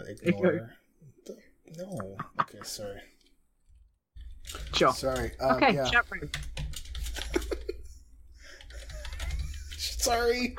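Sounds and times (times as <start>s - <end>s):
speech: 0.1s - 3.2s, 4.5s - 6.6s, 10.0s - 10.5s
laughter: 1.8s - 3.0s, 7.0s - 10.5s
typing on a computer keyboard: 4.2s - 5.5s, 6.2s - 7.8s, 8.5s - 10.2s.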